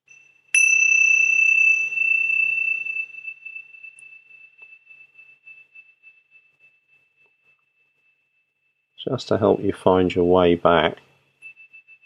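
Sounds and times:
meditation bell ringing: 0:00.0 - 0:08.7, 0:11.3 - 0:12.0
speech: 0:09.0 - 0:11.1.

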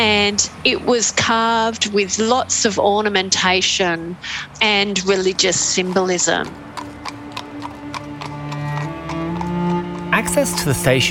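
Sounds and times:
speech: 0:00.0 - 0:06.8, 0:10.2 - 0:11.0
horse hooves clip-clopping while drawing a funeral coffin from a Sydney station: 0:03.8 - 0:10.8.

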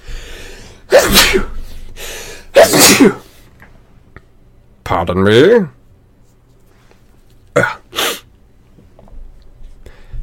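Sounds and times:
person sneezing: 0:00.9 - 0:03.4, 0:07.6 - 0:08.3
speech: 0:04.9 - 0:05.8.

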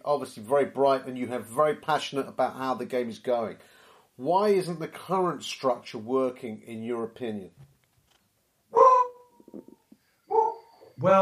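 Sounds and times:
speech: 0:00.0 - 0:07.7, 0:11.0 - 0:11.2
faint knocks and rustles: 0:07.6 - 0:08.4
dog barking: 0:08.8 - 0:09.2, 0:10.3 - 0:10.7.

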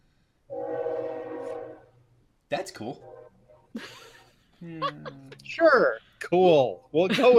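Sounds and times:
passing train horn blast: 0:00.5 - 0:03.7
speech: 0:02.5 - 0:03.1, 0:03.7 - 0:04.0, 0:04.6 - 0:07.3
laughter: 0:03.8 - 0:05.5, 0:07.1 - 0:07.3.

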